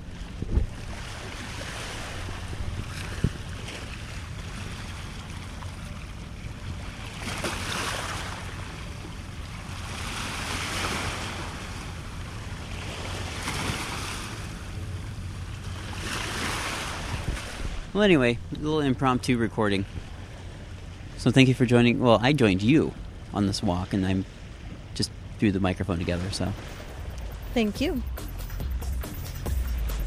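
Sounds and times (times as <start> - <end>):
gusty wind buffeting the microphone: 0.0 - 4.7, 15.9 - 18.6
ocean surf waves breaking: 0.0 - 30.0
speech: 18.0 - 20.0, 21.2 - 24.4, 25.0 - 26.8, 27.6 - 28.3.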